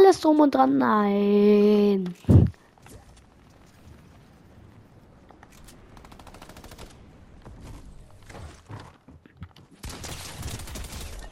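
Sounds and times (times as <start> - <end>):
speech: 0.1 - 2.6
rapid automatic gunfire from a video game: 5.9 - 7.2, 9.8 - 11.3.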